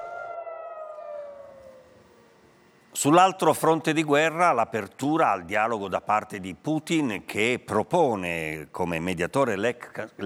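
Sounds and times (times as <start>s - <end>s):
air raid sirens wailing in northern Israeli communities: 0.0s - 3.3s
speech: 3.0s - 10.2s.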